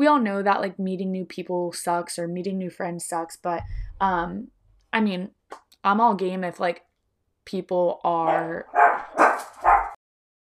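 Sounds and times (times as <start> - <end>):
speech: 0.0 - 6.9, 7.5 - 9.7
dog barking: 8.3 - 10.0.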